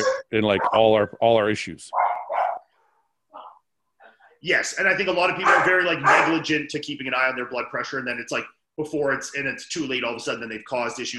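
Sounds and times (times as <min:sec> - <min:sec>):
dog barking at the door of a home: 0:00.0 - 0:00.9, 0:01.9 - 0:02.8, 0:05.4 - 0:06.4
speech: 0:00.3 - 0:02.0, 0:04.4 - 0:11.1.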